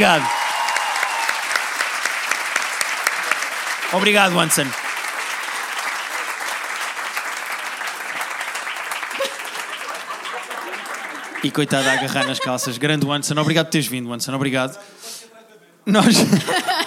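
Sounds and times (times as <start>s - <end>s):
speech: 0.0s - 0.4s, 3.9s - 4.9s, 11.4s - 15.1s, 15.9s - 16.8s
live audience applause: 0.0s - 12.9s
laughter: 3.8s - 4.6s, 9.1s - 13.7s, 16.0s - 16.8s.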